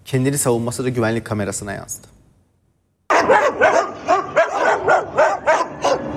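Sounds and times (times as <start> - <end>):
speech: 0.1 - 2.2
stray dogs barking while attacking an old man on a street in Silopi: 3.1 - 6.1.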